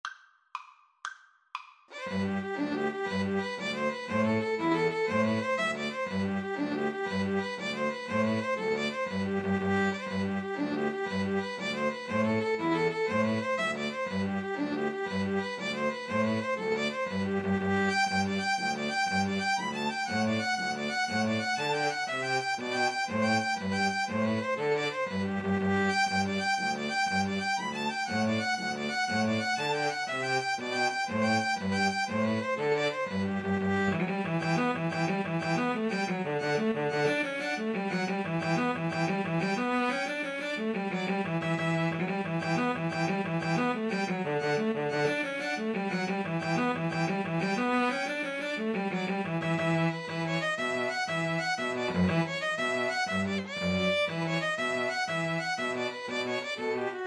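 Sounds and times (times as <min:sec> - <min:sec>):
string trio playing an Irish jig medley: 0:02.0 - 0:57.0.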